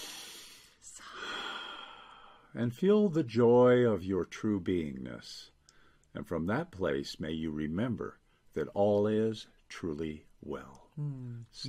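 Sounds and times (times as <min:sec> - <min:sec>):
deep slow breath with sigh-like exhale: 0:00.0 - 0:02.6
speech: 0:02.5 - 0:11.6.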